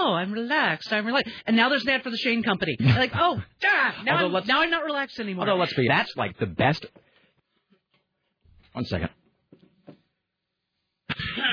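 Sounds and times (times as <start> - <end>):
speech: 0.2 - 7.0, 8.8 - 9.2, 11.2 - 11.5
person clearing throat: 11.1 - 11.5.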